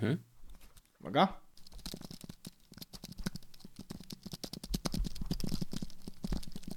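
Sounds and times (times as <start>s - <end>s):
speech: 0.0s - 0.3s, 1.0s - 1.4s
fast typing on a computer keyboard: 1.6s - 6.7s.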